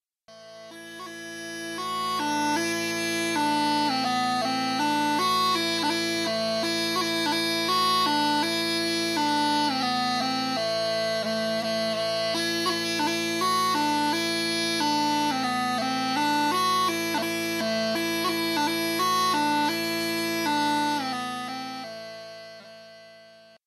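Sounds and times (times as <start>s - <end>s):
medieval smallpipes playing: 0.3s - 23.6s.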